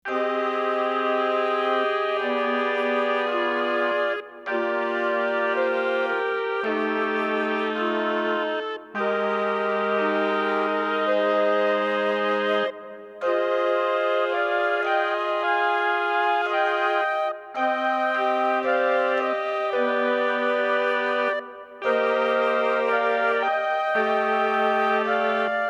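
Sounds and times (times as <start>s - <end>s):
chamber wind ensemble: 0.0s - 25.6s.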